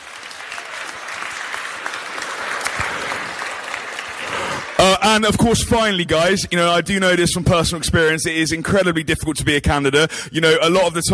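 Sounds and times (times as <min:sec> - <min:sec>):
crowd applauding: 0:00.0 - 0:05.4
speech: 0:05.0 - 0:11.1.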